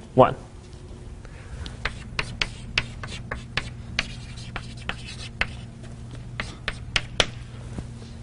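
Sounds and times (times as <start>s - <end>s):
low steady hum: 0.0s - 8.2s
pen or pencil writing by hand on paper: 1.8s - 5.7s, 6.4s - 7.2s.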